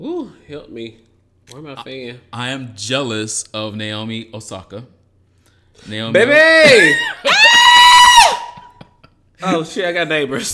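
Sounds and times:
speech: 0.0s - 5.0s, 5.8s - 7.5s, 9.4s - 10.5s
person screaming excitedly: 6.2s - 8.7s.

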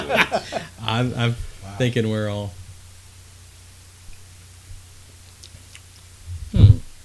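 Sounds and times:
laughter: 0.0s - 0.8s
short low voiced hum: 0.0s - 4.4s, 5.6s - 7.0s
speech: 0.1s - 2.6s
person swishing and chewing a sip of whiskey while tasting: 5.2s - 6.0s.

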